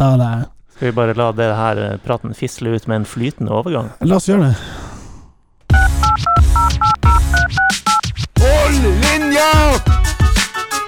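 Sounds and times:
speech: 0:00.0 - 0:04.8
telephone number dialed on a touch-tone keypad: 0:05.7 - 0:08.1
loud musical bed: 0:05.7 - 0:10.8.

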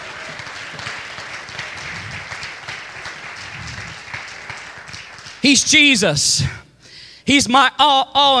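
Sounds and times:
crowd of people clapping hands: 0:00.0 - 0:05.7
speech: 0:05.4 - 0:06.6, 0:07.3 - 0:08.3.

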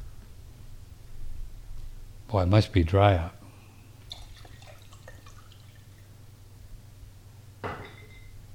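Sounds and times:
speech: 0:02.3 - 0:03.4
water pouring into a container of hot sulfur water: 0:04.0 - 0:06.2.

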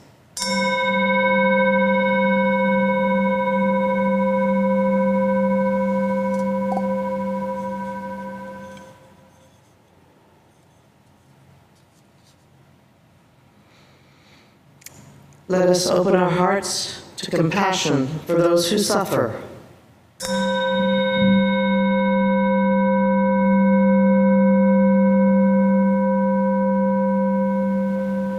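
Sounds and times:
meditation chime struck and ringing with a deep steady tone: 0:00.4 - 0:09.6, 0:20.2 - 0:28.3
speech: 0:15.5 - 0:19.5.

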